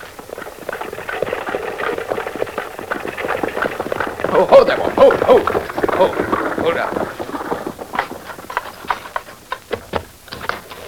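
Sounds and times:
horse hooves clip-clopping at walking pace as a horse-drawn rig draws up: 0:00.0 - 0:10.8
speech: 0:04.3 - 0:07.2.

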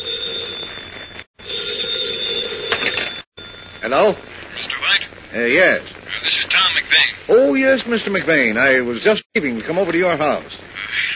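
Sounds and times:
telephone bell ringing: 0:00.0 - 0:04.2
speech: 0:03.8 - 0:04.4, 0:05.3 - 0:10.6.

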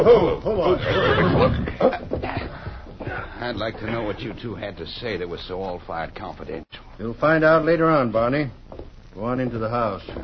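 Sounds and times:
speech: 0:00.0 - 0:02.4, 0:03.4 - 0:08.6, 0:09.2 - 0:10.2
horses whinnying as riders rein them up: 0:00.0 - 0:03.4.

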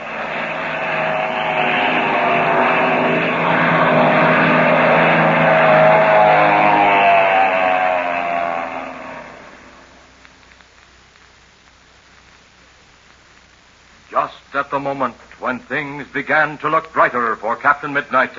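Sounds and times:
propeller plane engine roaring as plane dives overhead: 0:00.0 - 0:10.1
speech: 0:14.8 - 0:18.3.

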